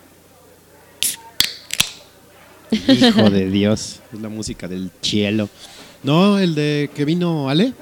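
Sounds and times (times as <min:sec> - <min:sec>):
beer being opened: 0:01.0 - 0:02.0
laughter: 0:02.7 - 0:04.0
speech: 0:02.7 - 0:07.7.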